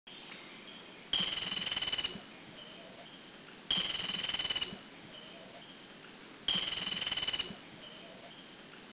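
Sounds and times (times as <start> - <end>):
Philippine woodpecker in Makiling, Philippines: 1.2 - 3.0, 3.7 - 5.7, 6.5 - 8.4.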